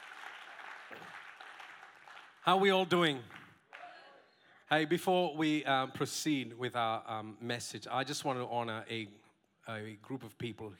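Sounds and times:
audience applause: 0.0 - 4.0
speech: 2.4 - 3.4, 4.7 - 10.7.

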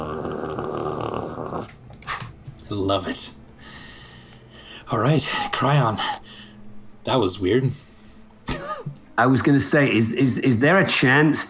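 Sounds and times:
voice imitating a wolf growl: 0.0 - 1.8
speech: 2.7 - 3.4, 4.9 - 6.1, 7.1 - 7.8, 9.2 - 11.4.

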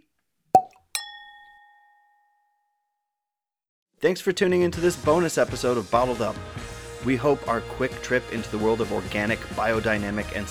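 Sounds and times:
wine glasses of Riesling and Pinot Grigio clinking in a toast: 0.6 - 2.2
speech: 4.0 - 10.4.

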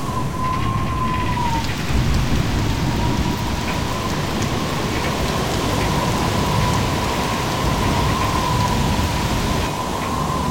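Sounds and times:
gusting wind with a faint high whistling tone: 0.0 - 10.4
heavy rain in a storm: 0.0 - 10.4.

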